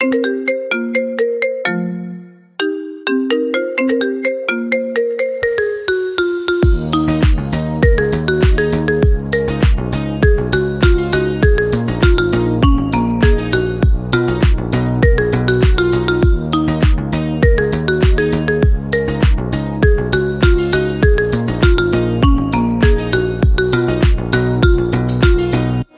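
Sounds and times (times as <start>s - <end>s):
marimba ringtone remix: 0.0s - 25.8s.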